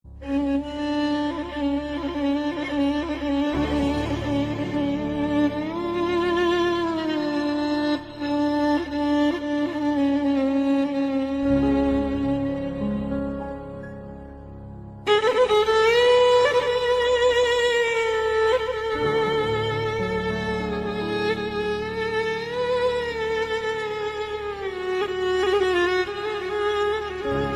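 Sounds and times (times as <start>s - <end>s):
sad instrumental music: 0.1s - 27.5s.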